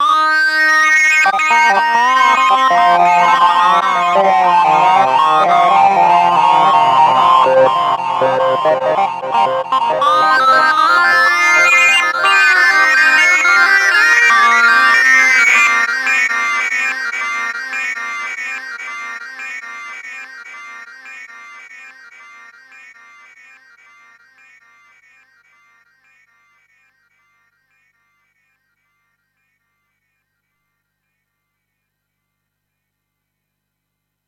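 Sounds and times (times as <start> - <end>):
synth lead: 0.0 - 17.0.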